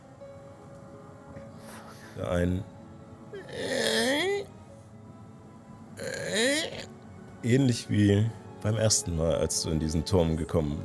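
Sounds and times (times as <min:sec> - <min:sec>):
speech: 0:02.2 - 0:02.8, 0:07.4 - 0:10.8
voice imitating a drawn-out creak from the upper floor of a tower: 0:06.0 - 0:06.9.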